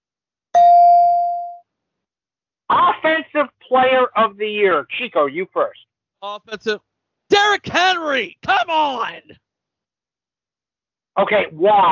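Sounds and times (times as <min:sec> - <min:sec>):
single bright bell ding: 0:00.6 - 0:01.6
speech: 0:03.7 - 0:09.4, 0:11.2 - 0:11.8.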